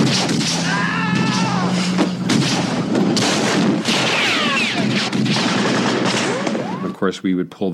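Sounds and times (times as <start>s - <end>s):
30-30 Winchester rifle gunshots recorded live: 0.0s - 0.7s, 1.7s - 6.9s
steady low rumble: 0.0s - 6.8s
speech: 7.1s - 7.7s.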